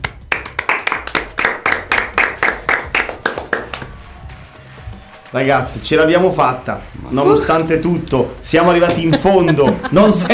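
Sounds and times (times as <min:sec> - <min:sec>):
steady rhythmic hand clapping: 0:00.0 - 0:05.4
speech: 0:05.3 - 0:10.3
laughter: 0:07.0 - 0:07.8, 0:08.6 - 0:10.3.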